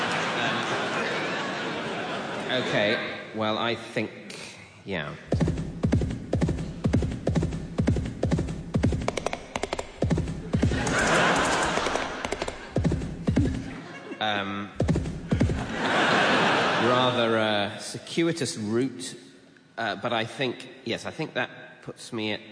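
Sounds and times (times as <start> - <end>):
laughter: 0.0 - 3.1, 10.4 - 14.6, 15.2 - 17.5
speech: 2.5 - 4.2, 4.8 - 5.4, 17.0 - 19.2, 19.8 - 22.5
hooves clopping: 5.3 - 13.8, 14.8 - 15.7.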